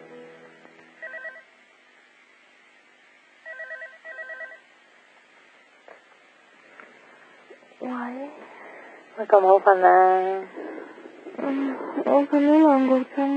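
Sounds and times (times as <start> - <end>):
low steady hiss: 0.0 - 13.3
telephone ringing in trilling electronic bursts: 1.0 - 1.5, 3.4 - 4.7
speech: 9.2 - 10.6, 11.5 - 13.3.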